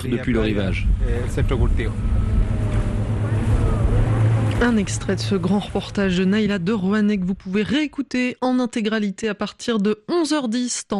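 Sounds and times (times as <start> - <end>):
speech: 0.0 - 2.4, 4.6 - 10.9
motorboat engine droning on water: 0.0 - 7.3.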